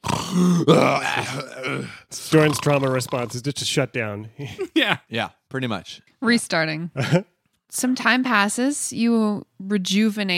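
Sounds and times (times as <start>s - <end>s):
voice imitating loud snoring: 0.0s - 3.4s
speech: 0.3s - 10.3s
laughter: 4.4s - 5.1s, 7.0s - 7.3s.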